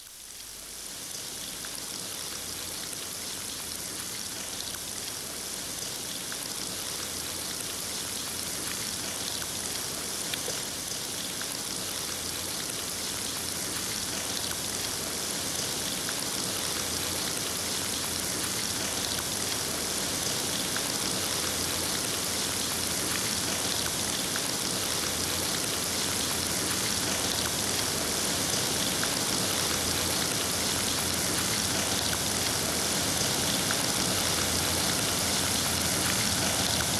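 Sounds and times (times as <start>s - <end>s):
rain falling outside at night: 0.0s - 36.9s.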